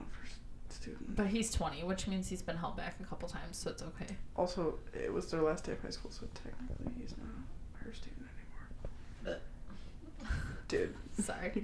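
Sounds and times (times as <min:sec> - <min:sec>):
speech: 0:00.8 - 0:08.5, 0:09.2 - 0:09.5, 0:10.3 - 0:11.6
short guttural burp: 0:09.2 - 0:09.6.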